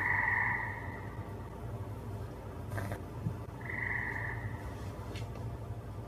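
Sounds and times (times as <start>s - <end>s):
drawn-out buzzing frog calls: 0.0s - 1.3s, 2.7s - 3.0s, 3.6s - 4.7s
frogs croaking in a distant chorus: 0.0s - 1.7s, 2.7s - 4.8s
steady low hum: 0.0s - 6.0s.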